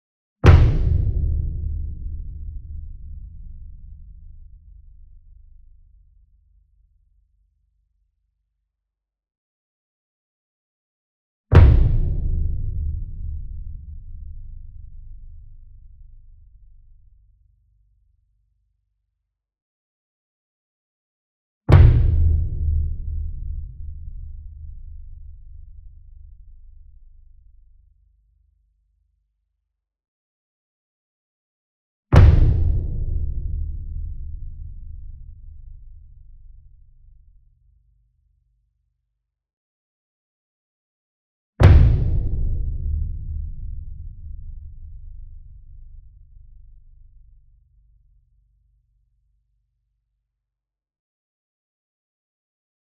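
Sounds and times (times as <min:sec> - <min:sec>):
40 inch concert bass drum flam with soft beater: 0:00.4 - 0:05.0, 0:11.6 - 0:16.0, 0:21.7 - 0:26.3, 0:32.2 - 0:36.9, 0:41.6 - 0:46.4.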